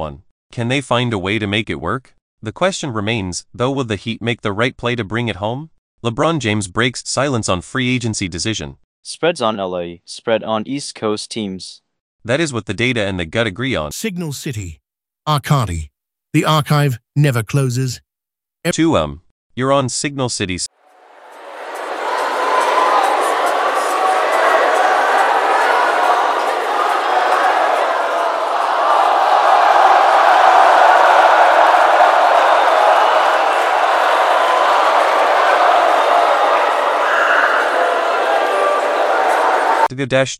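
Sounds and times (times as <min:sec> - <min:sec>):
speech: 0:00.0 - 0:18.0, 0:18.6 - 0:20.8, 0:40.0 - 0:40.3
large baseball stadium crowd cheering: 0:14.0 - 0:15.8, 0:16.4 - 0:18.0, 0:20.9 - 0:39.9.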